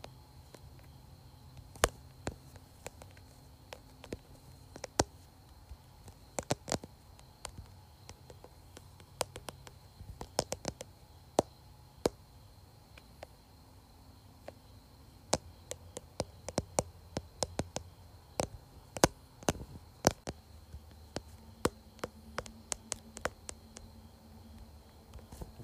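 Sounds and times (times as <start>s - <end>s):
faint low hum: 0.0s - 25.6s
fingertip taps on a phone case and screen: 6.4s - 12.2s, 15.3s - 20.4s, 21.2s - 23.9s.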